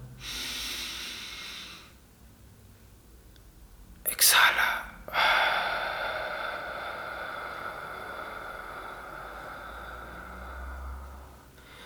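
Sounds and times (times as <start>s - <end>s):
deep diaphragmatic breath in a breathing exercise: 0.2s - 2.0s, 5.1s - 11.8s.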